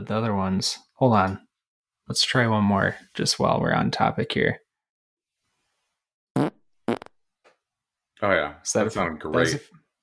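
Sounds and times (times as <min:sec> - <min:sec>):
speech: 0:00.0 - 0:01.5, 0:02.1 - 0:04.6, 0:08.2 - 0:09.8
fart sound effects: 0:06.4 - 0:07.2.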